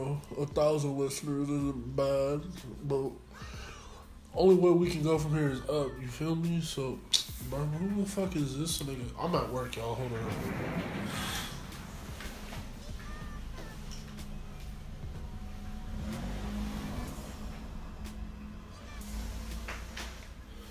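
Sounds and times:
speech: 0.2 - 3.6, 4.4 - 11.4
sports car engine revving past: 7.3 - 20.6.

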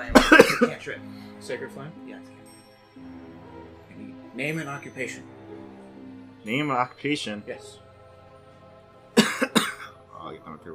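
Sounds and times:
person clearing throat: 0.0 - 0.8, 9.2 - 10.0
speech: 0.0 - 2.4, 4.4 - 5.4, 6.4 - 7.8, 10.2 - 10.7.

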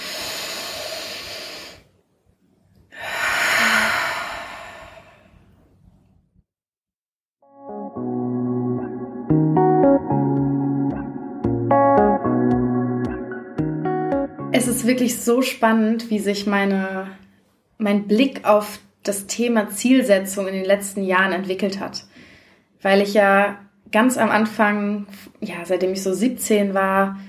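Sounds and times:
deep breathing during a guided breathing exercise: 0.0 - 1.9, 2.9 - 5.6, 22.1 - 22.7
soft tonal music with steady plucked notes: 7.5 - 15.0
speech: 14.9 - 17.2, 17.8 - 22.1, 22.8 - 27.2.

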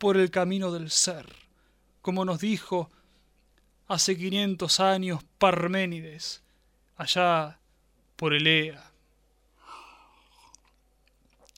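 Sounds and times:
speech: 0.0 - 1.4, 2.0 - 3.0, 3.9 - 6.4, 7.0 - 7.6, 8.2 - 8.9
person sipping wine: 9.7 - 11.5
swallowing: 10.0 - 11.5.

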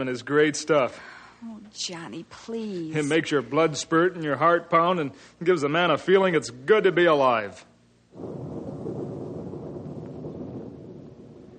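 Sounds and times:
speech: 0.0 - 8.5
deep heavy thunder rumbling before a storm: 8.1 - 11.5.

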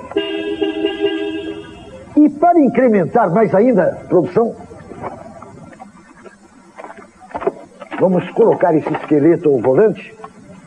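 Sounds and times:
remote-control toy car horn honking: 0.0 - 2.0
speech: 2.2 - 4.6, 8.0 - 10.3.

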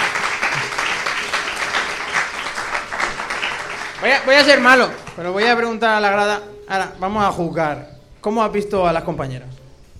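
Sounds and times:
audience applauding: 0.0 - 5.6
speech: 4.0 - 9.6.

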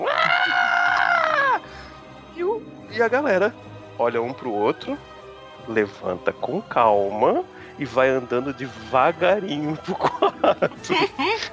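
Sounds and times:
person imitating a girlfriend's loud shrill scream in a small forest cabin: 0.0 - 1.6
speech: 3.0 - 11.5
laughter: 9.6 - 11.5.

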